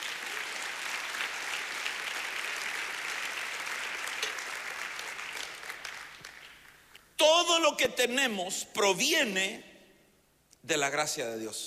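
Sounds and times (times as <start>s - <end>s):
audience clapping hands: 0.0s - 6.9s
speech: 7.6s - 9.7s, 10.6s - 11.6s.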